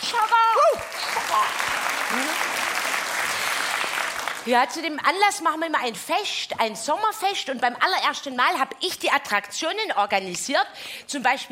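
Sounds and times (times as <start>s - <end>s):
crowd clapping: 0.0s - 4.5s
speech: 4.4s - 11.5s.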